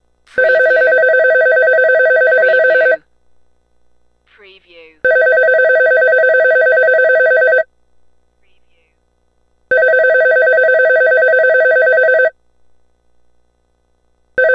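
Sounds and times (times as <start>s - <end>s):
telephone ringing: 0.4s - 3.0s, 5.1s - 7.7s, 9.7s - 12.4s.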